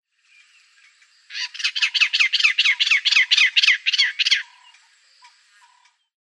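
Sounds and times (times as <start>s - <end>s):
jay calling: 1.3s - 4.9s.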